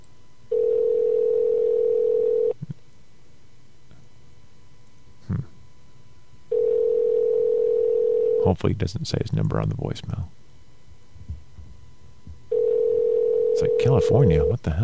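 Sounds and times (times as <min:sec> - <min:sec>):
phone line ringback tone on an outgoing call: 0:00.5 - 0:02.6, 0:06.5 - 0:08.5, 0:12.5 - 0:14.6
speech: 0:08.6 - 0:10.4, 0:13.8 - 0:14.8.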